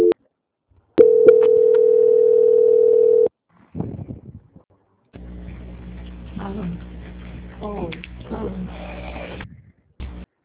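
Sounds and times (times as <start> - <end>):
telephone line tone while a call is transferred: 1.0 - 3.3.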